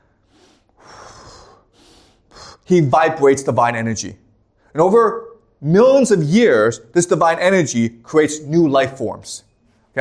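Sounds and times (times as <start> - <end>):
voice imitating a deep breath: 0.2 - 2.7
speech: 2.7 - 9.9.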